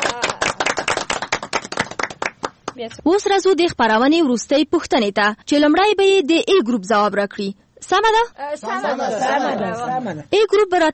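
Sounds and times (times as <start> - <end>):
audience clapping at a quiz event: 0.0 - 2.8
speech: 2.8 - 10.9.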